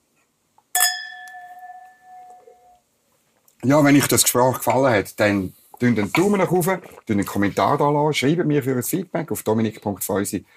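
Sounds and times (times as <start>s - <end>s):
glasses clinking in a toast: 0.8s - 2.8s
speech: 3.6s - 10.5s.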